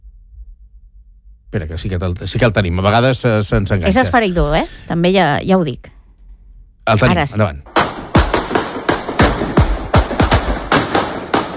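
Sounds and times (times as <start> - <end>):
speech: 1.5 - 5.9, 6.9 - 7.7
hissy background of recorded footage: 1.5 - 11.5
gunshots in recorded footage: 7.7 - 11.5.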